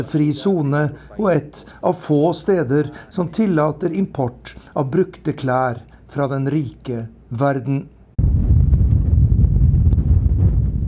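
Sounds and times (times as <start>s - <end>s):
speech: 0.0s - 8.0s
strong wind between sand dunes of the Atacama Desert in Chile: 8.2s - 10.8s.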